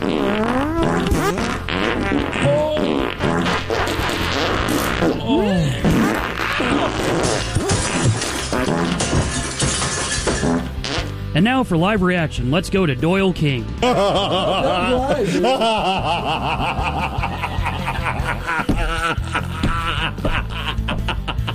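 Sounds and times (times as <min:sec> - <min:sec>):
fart sounds in a rapid montage: 0:00.0 - 0:11.2, 0:18.6 - 0:20.5
laughter: 0:05.1 - 0:07.7, 0:13.8 - 0:21.5
speech: 0:11.4 - 0:17.2.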